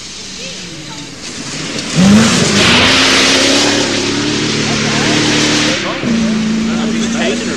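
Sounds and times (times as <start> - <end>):
faint voices: 0.0 - 2.8, 3.8 - 7.5
rally cars with high-revving engines passing at speed: 0.1 - 7.5.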